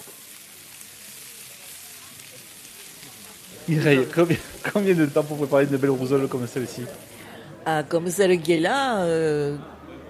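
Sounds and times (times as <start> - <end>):
chopped onions frying in olive oil in a pan: 0.0 - 7.4
speech: 3.7 - 9.8.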